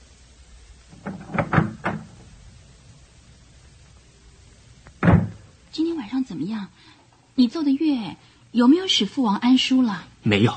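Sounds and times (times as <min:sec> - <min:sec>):
house door opening with wooden clunks and rattles: 0:01.0 - 0:02.3, 0:05.0 - 0:05.5
speech: 0:05.8 - 0:10.5.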